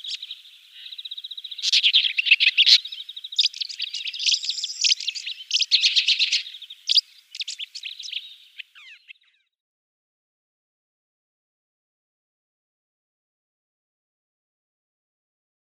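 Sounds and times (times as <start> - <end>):
woodchat shrike song of scratchy chatter and trills: 0.0 - 9.5.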